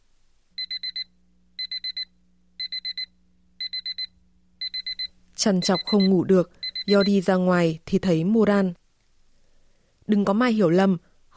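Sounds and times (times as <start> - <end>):
electronic alarm clock beeping: 0.6 - 7.3
speech: 5.4 - 8.8, 10.1 - 11.3.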